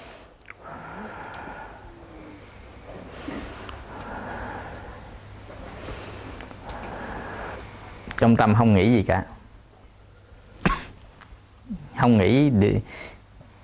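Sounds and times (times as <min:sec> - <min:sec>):
person breathing in through the nose and out through the mouth: 0:00.0 - 0:08.2
low hum: 0:00.0 - 0:13.6
speech: 0:08.2 - 0:09.4, 0:12.0 - 0:13.2.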